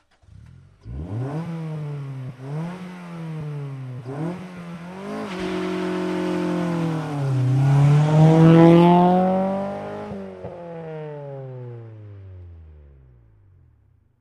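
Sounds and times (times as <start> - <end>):
Acura Integra engine starting and revving, exterior: 0.0 - 13.9
Acura Integra tires: 0.8 - 11.1.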